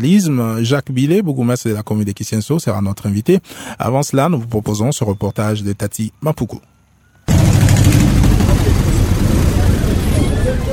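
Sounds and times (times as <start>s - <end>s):
speech: 0.0s - 6.7s
street bustle: 6.8s - 10.7s
idling bus engines rumbling at a busy bus stop: 7.3s - 10.7s.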